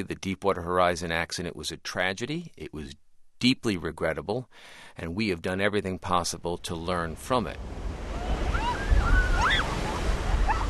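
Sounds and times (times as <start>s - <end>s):
speech: 0.0s - 8.1s
surf washing onto a breezy public beach in Gulf Shores Alabama: 7.1s - 10.6s
wind noise: 7.6s - 10.6s
faint high tonal calls: 8.3s - 10.6s.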